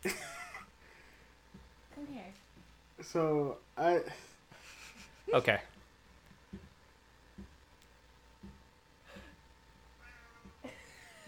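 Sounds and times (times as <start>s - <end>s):
low steady hum: 0.0s - 11.2s
speech: 3.0s - 4.3s, 5.3s - 5.7s
cat meowing: 10.0s - 10.6s.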